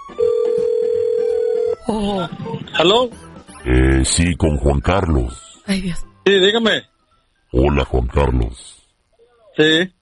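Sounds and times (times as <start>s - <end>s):
outgoing phone call ringing tone on the line: 0.0s - 1.9s
speech: 1.9s - 6.9s, 7.5s - 8.8s, 9.6s - 10.0s.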